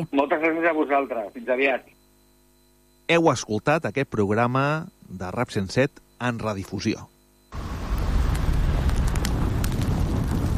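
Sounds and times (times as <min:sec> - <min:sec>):
speech: 0:00.0 - 0:02.0, 0:03.1 - 0:07.1
roaring fire: 0:07.5 - 0:10.5.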